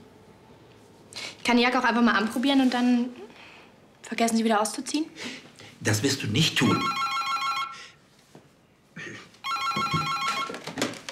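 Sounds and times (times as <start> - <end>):
faint noise: 0.0 - 11.1
speech: 1.5 - 3.3, 4.1 - 7.0
telephone ringing with a bright trilling bell: 6.6 - 7.9, 9.4 - 10.7.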